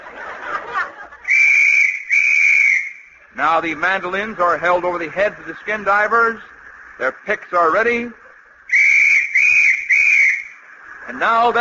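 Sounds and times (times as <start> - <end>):
laughter: 0.0 - 1.6, 7.0 - 8.8, 11.0 - 11.5
loud shrill whistle blasts: 1.2 - 3.3, 8.7 - 10.6
speech: 3.4 - 8.2, 11.1 - 11.5.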